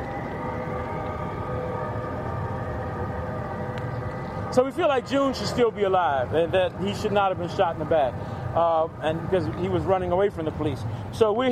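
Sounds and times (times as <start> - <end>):
passing train rumbling: 0.0 - 11.5
speech: 4.5 - 11.5.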